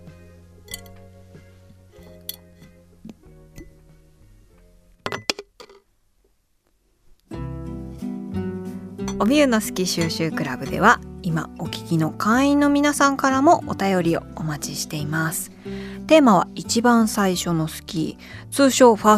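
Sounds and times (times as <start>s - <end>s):
soft music: 0.0s - 5.3s, 7.3s - 19.1s
coaster dropped into a glass jar: 0.7s - 1.0s, 5.1s - 5.8s
speech: 9.2s - 19.1s.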